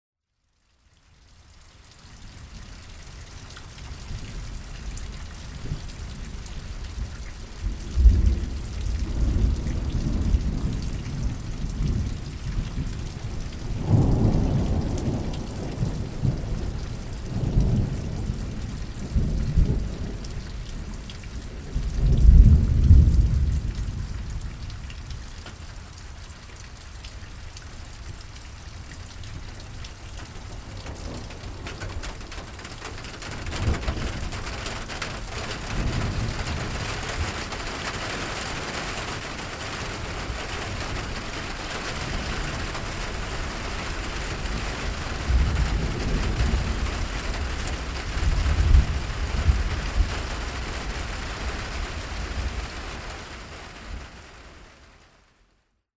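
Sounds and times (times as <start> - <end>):
rain on a metal roof: 0.3 - 55.8
thunderstorm: 4.0 - 25.6, 29.3 - 54.9.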